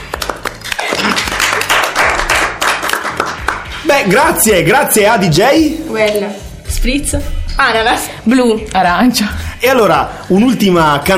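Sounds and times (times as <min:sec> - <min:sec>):
applause for a story: 0:00.0 - 0:03.8
speech: 0:04.0 - 0:11.1.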